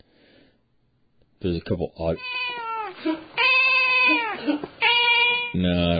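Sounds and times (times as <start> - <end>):
speech: 1.4 - 2.4, 3.0 - 3.4, 4.0 - 4.9, 5.5 - 5.9
cat yowling and wailing: 2.2 - 5.7.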